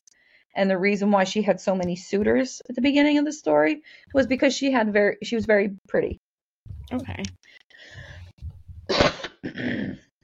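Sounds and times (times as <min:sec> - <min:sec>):
speech: 0:00.5 - 0:06.2, 0:06.9 - 0:08.1, 0:09.4 - 0:10.0
person coughing: 0:08.9 - 0:10.0.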